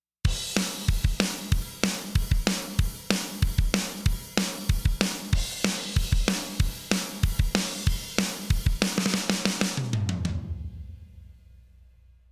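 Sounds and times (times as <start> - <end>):
drum: 0.3 - 11.7.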